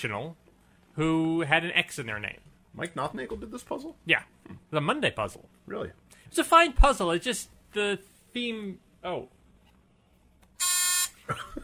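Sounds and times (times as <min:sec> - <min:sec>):
speech: 0:00.0 - 0:00.4, 0:01.0 - 0:09.4, 0:11.3 - 0:11.6
game-show buzzer being pressed: 0:10.6 - 0:11.2.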